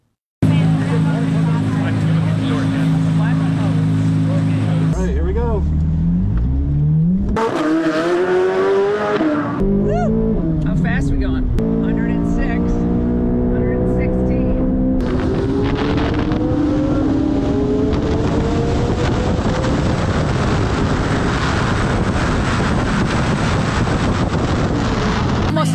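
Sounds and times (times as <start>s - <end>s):
Corvette sports car engine revving around a race track: 0.4s - 25.7s
wind buffeting the microphone: 12.7s - 25.7s.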